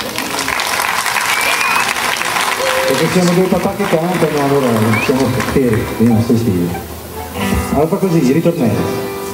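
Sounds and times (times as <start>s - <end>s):
audience applause: 0.0s - 7.4s
speech: 3.0s - 6.9s, 7.7s - 9.3s.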